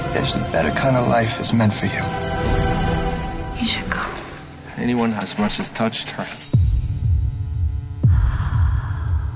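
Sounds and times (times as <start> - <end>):
speech: 0.2 - 2.6, 3.6 - 4.1, 4.8 - 6.4
deep throbbing heartbeat sound effect: 6.6 - 9.3.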